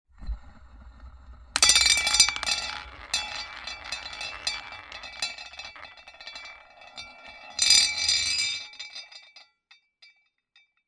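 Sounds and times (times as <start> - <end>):
roulette wheel spinning: 1.6 - 8.5.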